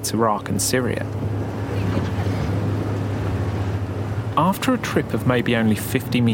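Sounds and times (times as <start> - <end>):
speech: 0.0 - 1.4, 4.4 - 6.3
engine on a makeshift boat crossing the Tigris River: 0.0 - 6.3
rushing wind: 0.0 - 6.3.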